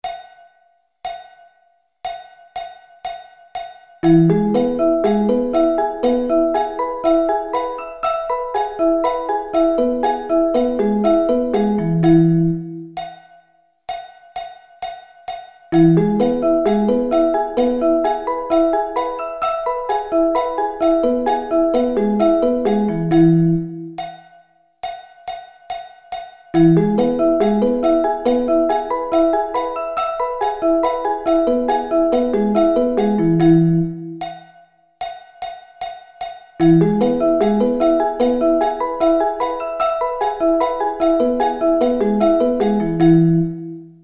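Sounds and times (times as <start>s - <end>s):
E arpeggio inversions: 4.0s - 13.0s, 15.8s - 24.0s, 26.6s - 34.2s, 36.6s - 43.8s.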